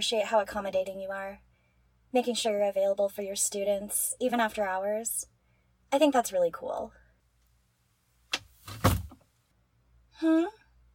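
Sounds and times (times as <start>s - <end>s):
speech: 0.0s - 1.5s, 2.1s - 5.3s, 5.9s - 7.0s, 10.2s - 10.6s
door swinging and shutting with a solid thump: 8.6s - 9.2s.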